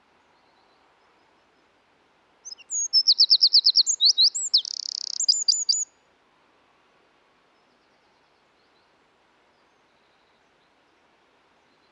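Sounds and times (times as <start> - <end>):
Eurasian wren Troglodytes troglodytes singing: 2.5 - 5.8.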